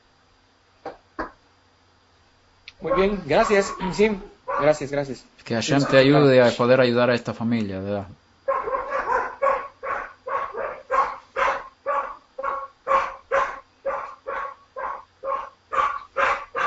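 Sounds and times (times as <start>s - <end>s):
dog barking: 2.8s - 4.8s, 5.8s - 6.2s, 8.5s - 16.6s
speech: 2.8s - 8.2s.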